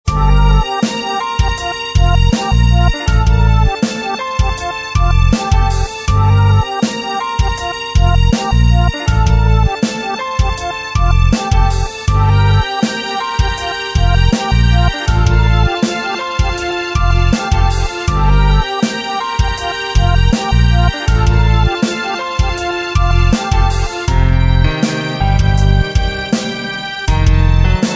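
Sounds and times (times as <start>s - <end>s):
moving musical groove: 0.0s - 27.9s.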